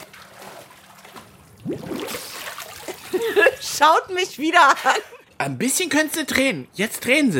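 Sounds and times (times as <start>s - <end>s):
water trickling and gurgling: 0.0s - 3.5s
speech: 3.4s - 7.3s.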